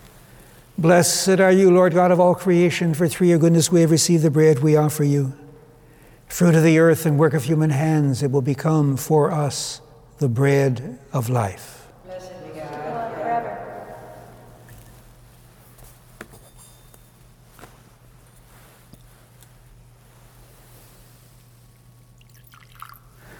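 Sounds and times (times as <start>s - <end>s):
speech: 0.8s - 5.4s, 6.3s - 11.8s
person saying church prayers: 0.8s - 5.5s, 6.3s - 14.7s
water poured into a chalice of wine during church prayers: 22.2s - 23.3s.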